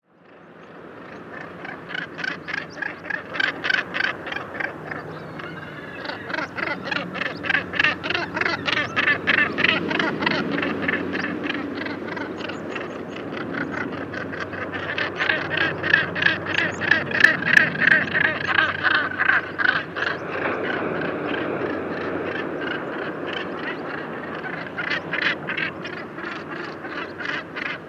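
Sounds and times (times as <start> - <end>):
northern gannet: 1.1 - 27.8.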